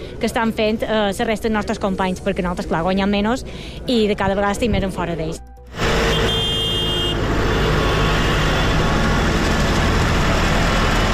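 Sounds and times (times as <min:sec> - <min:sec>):
heavy engines rumbling: 0:00.0 - 0:11.1
speech: 0:00.2 - 0:05.5
tractor horns honking at farmers' protest: 0:05.8 - 0:09.0.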